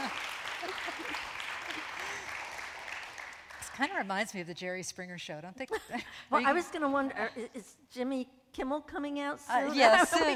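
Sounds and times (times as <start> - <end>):
people cheering: 0.0 - 3.4
audience applause: 0.0 - 4.0
speech: 3.8 - 10.3.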